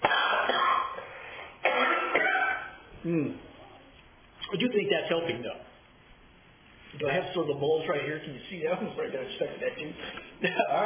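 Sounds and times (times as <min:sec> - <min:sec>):
person coughing harshly: 0:00.0 - 0:03.4
short voiced grunt as the throat clears: 0:01.6 - 0:03.4
speech: 0:03.0 - 0:03.5, 0:04.5 - 0:05.7, 0:07.0 - 0:10.8.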